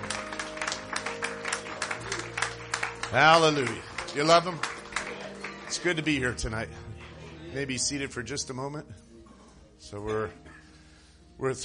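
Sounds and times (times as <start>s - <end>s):
church congregation clapping hands during a service: 0.0s - 8.1s
speech: 3.1s - 4.7s, 5.7s - 6.8s, 7.5s - 9.0s, 9.8s - 10.5s, 11.4s - 11.6s.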